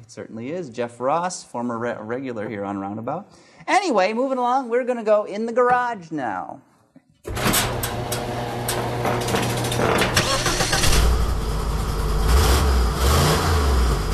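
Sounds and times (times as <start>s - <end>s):
speech: 0.1s - 7.8s
big-block Lincoln V8 engine starting and revving: 8.8s - 14.1s.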